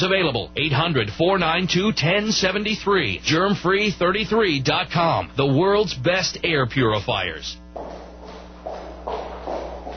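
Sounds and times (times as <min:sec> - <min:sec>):
speech: 0:00.0 - 0:07.6
low steady hum: 0:00.0 - 0:09.9
footsteps on a street: 0:07.7 - 0:09.9.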